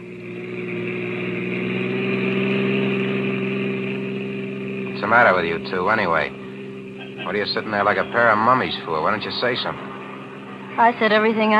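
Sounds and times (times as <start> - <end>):
car engine running: 0.0 - 11.5
speech: 5.1 - 6.4, 7.3 - 9.9, 10.8 - 11.5
laughter: 6.8 - 11.5.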